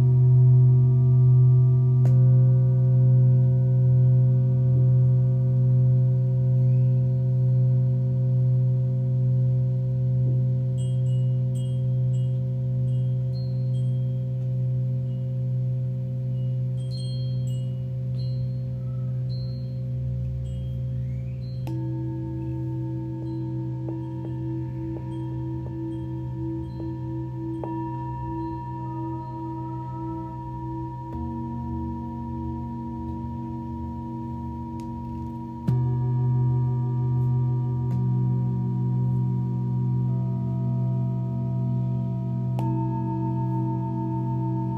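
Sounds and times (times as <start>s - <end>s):
singing bowls ringing in long sustained tones for sound healing: 0.0s - 44.7s
faint small chimes: 10.8s - 41.6s.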